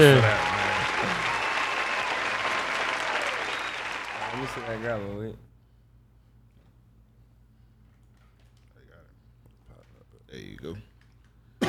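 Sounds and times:
speech: 0.0s - 0.4s, 4.5s - 5.5s, 10.5s - 10.9s
group applauding: 0.0s - 5.2s.

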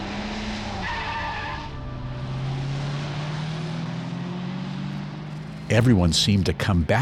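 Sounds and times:
tire squeal: 0.0s - 4.1s
car engine accelerating onto an empty highway: 0.0s - 7.0s
road noise on an empty highway: 0.0s - 7.0s
speech: 5.7s - 7.0s.

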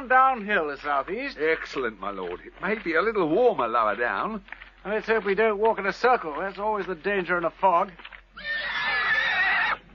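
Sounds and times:
speech: 0.0s - 8.6s
frightened horse whinnying: 8.4s - 9.9s.

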